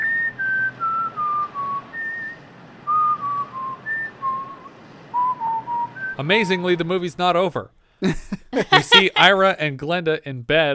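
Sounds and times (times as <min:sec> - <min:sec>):
man whistling a film theme tune: 0:00.0 - 0:06.6
speech: 0:06.2 - 0:10.7
laughter: 0:08.0 - 0:09.5.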